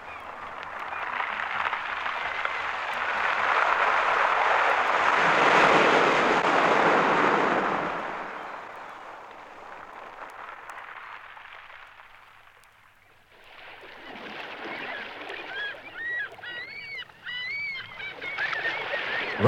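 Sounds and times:
birds chirping: 0.0s - 2.9s, 13.9s - 19.4s
water rushing and splashing as a boat moves across it: 0.0s - 19.4s.

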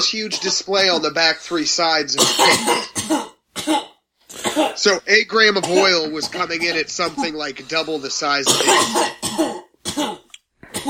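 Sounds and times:
loud harsh coughs: 0.0s - 1.3s, 2.1s - 5.0s, 5.6s - 10.8s
speech: 0.0s - 3.9s, 4.8s - 9.5s.

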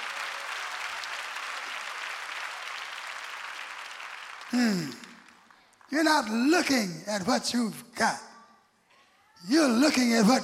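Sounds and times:
audience clapping hands: 0.0s - 6.8s
speech: 4.5s - 5.0s, 5.9s - 8.3s, 9.4s - 10.4s
man speaking loudly: 5.9s - 8.4s, 9.4s - 10.4s.

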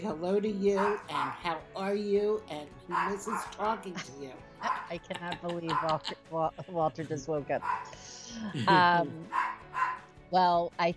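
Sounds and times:
speech: 0.0s - 10.9s
dog barking: 0.7s - 1.5s, 2.9s - 3.8s, 4.6s - 5.0s, 5.7s - 6.1s, 7.6s - 8.0s, 9.3s - 10.1s
laughter: 3.7s - 7.4s, 8.3s - 9.2s.

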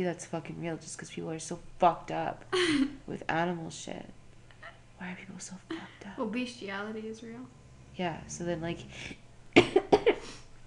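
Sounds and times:
speech: 0.0s - 4.2s, 5.0s - 9.2s
double-burst coughs: 9.6s - 10.4s.

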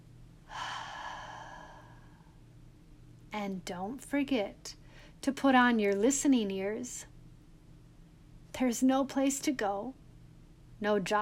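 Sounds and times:
deep breathing during a children's meditation practice: 0.5s - 2.4s
speech: 3.3s - 7.1s, 8.6s - 10.0s, 10.8s - 11.1s.

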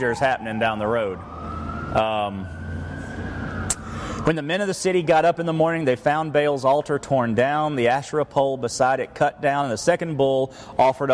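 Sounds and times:
speech: 0.0s - 1.4s, 2.0s - 2.6s, 4.2s - 11.1s
emergency vehicle siren wailing outside: 0.0s - 8.7s.

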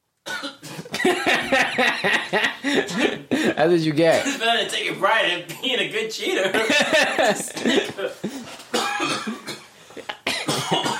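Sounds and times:
person coughing in harsh bursts: 0.3s - 1.0s, 2.7s - 4.4s, 7.1s - 10.9s
laughter: 0.8s - 3.5s, 6.4s - 8.6s
speech: 1.0s - 8.5s.

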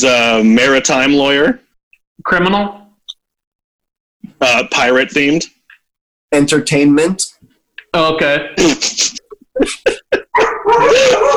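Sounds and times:
speech: 0.0s - 1.6s, 2.2s - 2.8s, 4.4s - 5.6s, 6.3s - 7.3s, 7.9s - 10.1s, 10.7s - 11.3s
laughter: 8.0s - 11.3s
dogs barking and whining: 10.2s - 11.3s.

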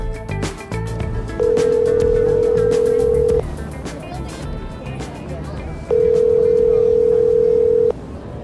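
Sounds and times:
street noise at Washington and Summer Street in Downtown Crossing: 0.0s - 8.4s
cell phone call electronic ringback tone: 1.4s - 3.4s, 5.9s - 8.0s
chatter at Washington and Summer Street in Downtown Crossing: 2.7s - 8.4s.

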